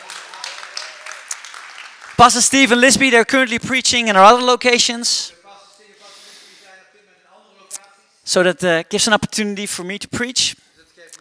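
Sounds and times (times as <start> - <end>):
audience applause: 0.0 - 2.5
speech: 2.2 - 5.4, 8.3 - 11.1.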